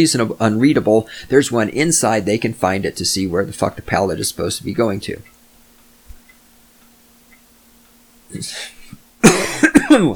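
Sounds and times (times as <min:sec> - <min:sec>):
speech: 0:00.0 - 0:05.3, 0:08.3 - 0:08.8, 0:10.0 - 0:10.1
faint hum: 0:00.0 - 0:10.1
person coughing: 0:08.6 - 0:10.1.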